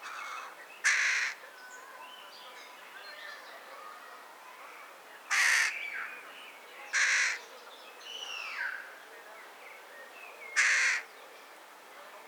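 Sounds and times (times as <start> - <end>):
Carrion crow Corvus corone calling with rasping caws: 0.0 - 1.4, 5.3 - 5.7, 7.0 - 7.4, 10.6 - 11.1.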